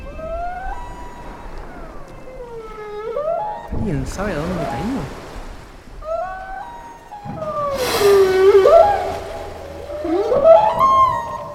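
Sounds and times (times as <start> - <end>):
whales calling during a ritual: 0.0 - 11.5
speech: 3.8 - 5.2.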